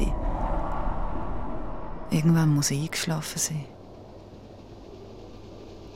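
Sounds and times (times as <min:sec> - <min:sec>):
train rolling along the tracks: 0:00.0 - 0:04.7
speech: 0:02.1 - 0:03.8.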